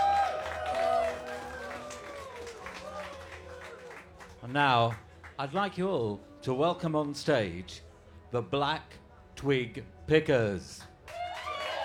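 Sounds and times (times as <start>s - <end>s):
voice rising above applause: 0.0s - 5.0s, 11.1s - 11.8s
festival audience applauding: 0.0s - 5.7s, 11.1s - 11.8s
speech: 4.5s - 10.9s.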